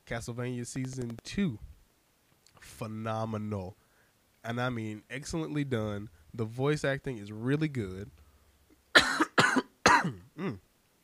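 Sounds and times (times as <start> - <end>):
speech: 0.1 - 1.7, 2.6 - 3.8, 4.4 - 8.2, 9.5 - 10.7
sharp coughs: 9.0 - 10.6
voiced throat-clearing grunt: 9.0 - 10.6.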